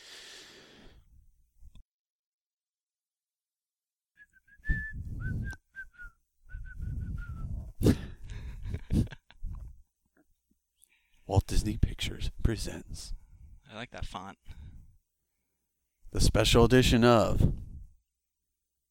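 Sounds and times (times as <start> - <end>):
whistled tune from an animated cartoon: 4.2 - 7.7
speech: 11.4 - 14.7, 16.1 - 17.7.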